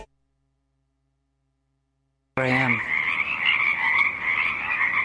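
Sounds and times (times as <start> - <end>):
dense chorus of Pacific chorus frogs trilling: 2.4 - 5.0.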